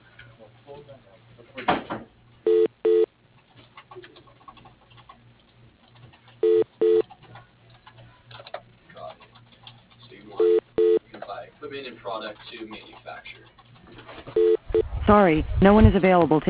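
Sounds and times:
speech: 0.7s - 2.0s, 12.1s - 14.4s, 15.1s - 16.4s
telephone keypad tones dialed into an automated phone menu: 2.5s - 3.1s, 6.4s - 7.0s, 10.4s - 11.0s, 14.4s - 14.8s.

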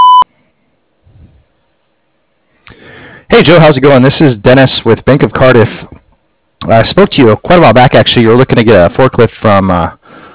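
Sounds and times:
electronic answering machine beep: 0.0s - 0.2s
faint low rumble: 0.0s - 2.6s
speech: 3.4s - 6.0s, 6.6s - 10.0s.

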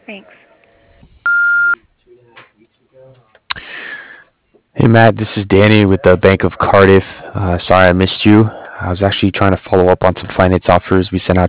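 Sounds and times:
speech: 0.1s - 0.5s, 4.8s - 11.4s
answering machine beep: 1.3s - 1.8s
hissy phone-line noise: 1.3s - 1.8s.

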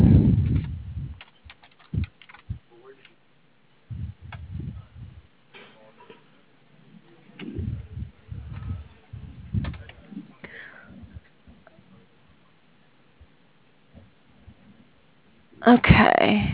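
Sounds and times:
low thumps: 0.0s - 1.2s, 3.9s - 5.3s, 7.4s - 10.1s
typing on a computer keyboard while finishing an email: 1.2s - 3.2s
speech: 15.7s - 16.5s.

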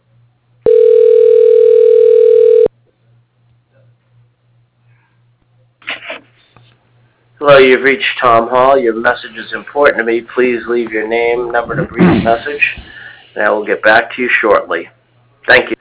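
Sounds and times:
telephone tone of a call being transferred to voicemail: 0.6s - 2.7s
speech: 7.6s - 15.0s, 15.5s - 15.7s.

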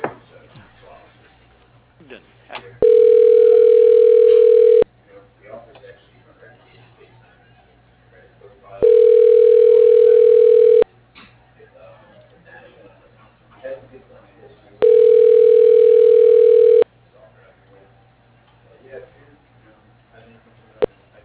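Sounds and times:
telephone line tones while a call is transferred on an office phone system: 2.8s - 4.9s, 8.8s - 10.8s, 14.8s - 16.8s.

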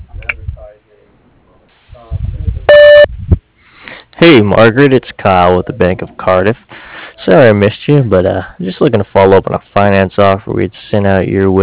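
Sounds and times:
answering machine beep: 2.7s - 3.1s
speech: 4.2s - 11.6s.

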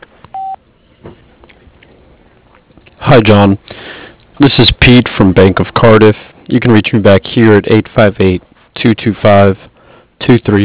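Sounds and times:
answering machine beep: 0.3s - 0.6s
speech: 3.1s - 3.8s, 4.4s - 10.6s.

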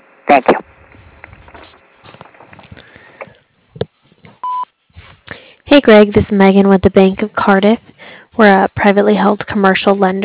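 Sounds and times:
telephone line noise: 0.0s - 10.2s
speech: 0.3s - 0.7s, 5.8s - 10.2s
voicemail recording beep: 4.4s - 4.7s.

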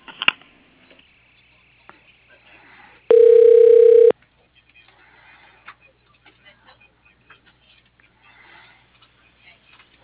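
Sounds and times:
electronic telephone tone as a call is transferred to voicemail: 3.1s - 4.1s.

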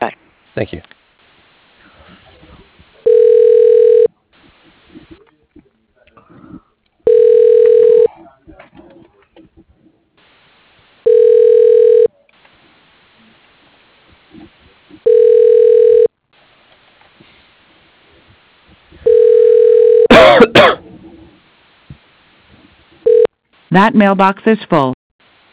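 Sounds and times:
crackling burst of noise: 0.0s - 5.4s, 10.2s - 15.4s, 16.0s - 19.1s, 20.8s - 23.8s, 25.2s - 25.5s
speech: 0.6s - 1.0s, 23.8s - 25.0s
telephone ringing tone of a call being transferred: 3.0s - 4.1s, 7.0s - 8.1s, 11.0s - 12.1s, 15.0s - 16.1s, 19.0s - 20.1s, 23.0s - 23.3s.

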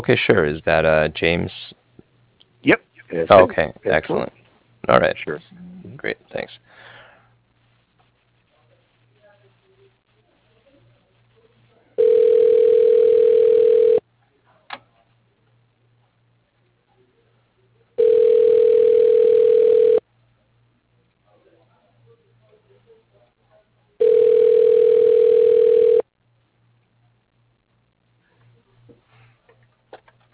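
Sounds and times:
speech: 0.0s - 1.8s, 2.6s - 6.7s
telephone ringback tone while a call is transferred: 12.0s - 14.0s, 18.0s - 20.0s, 24.0s - 26.0s.

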